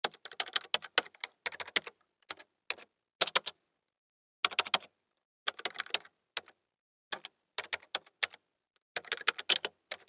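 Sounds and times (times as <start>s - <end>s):
computer keyboard typing: 0.0s - 3.5s, 4.5s - 4.9s, 5.5s - 8.4s, 9.0s - 10.0s.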